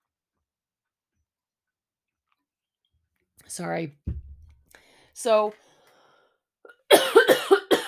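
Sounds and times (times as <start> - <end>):
speech: 3.5 - 4.2, 5.2 - 5.6
harsh rapid coughs: 6.9 - 7.8.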